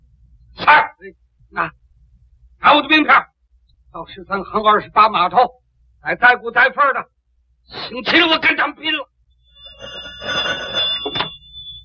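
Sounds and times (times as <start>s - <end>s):
speech: 0.7s - 1.8s, 2.6s - 3.3s, 3.9s - 9.1s
telephone ringing with a continuous electric bell tone: 9.4s - 11.8s.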